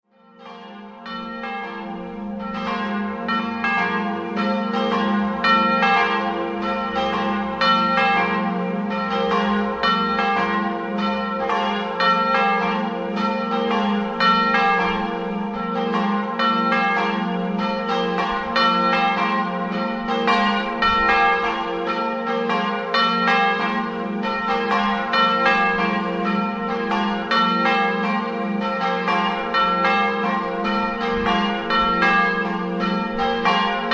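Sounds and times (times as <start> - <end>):
bells ringing: 0.2 - 33.9.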